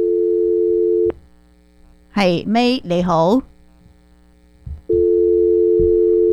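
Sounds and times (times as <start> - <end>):
telephone busy tone after a dropped call during a radio phone-in: 0.0 - 1.1, 4.9 - 6.3
speech: 2.2 - 3.5.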